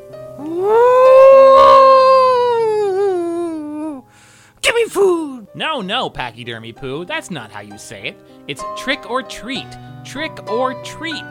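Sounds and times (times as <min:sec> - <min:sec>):
creature giving a long eerie howl: 0:00.4 - 0:04.0
speech: 0:04.9 - 0:11.3.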